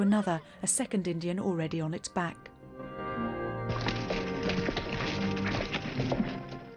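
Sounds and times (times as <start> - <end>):
speech: 0.0 - 2.9
steady music: 0.0 - 6.7
horse hooves galloping as two riders ride off hastily: 3.7 - 6.7.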